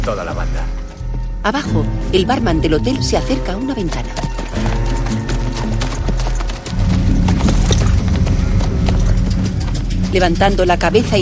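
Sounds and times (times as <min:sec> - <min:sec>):
speech: 0:00.0 - 0:00.8, 0:01.4 - 0:04.8, 0:10.1 - 0:11.2
horse hooves clopping as rider moves horse into position: 0:02.5 - 0:11.2.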